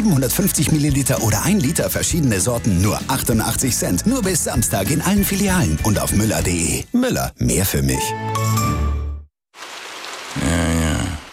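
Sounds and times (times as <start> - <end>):
speech: 0.0 - 8.6
steady rain pouring: 9.6 - 11.3.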